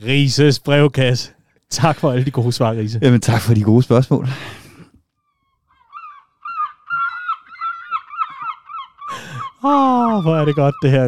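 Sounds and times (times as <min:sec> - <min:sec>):
speech: 0:00.0 - 0:04.6, 0:09.6 - 0:11.0
gulls squawking: 0:05.4 - 0:11.0
laughter: 0:06.4 - 0:11.0.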